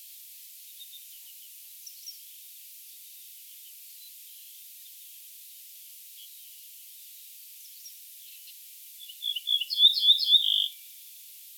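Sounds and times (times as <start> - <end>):
Ortolan bunting singing: 9.0 - 10.8.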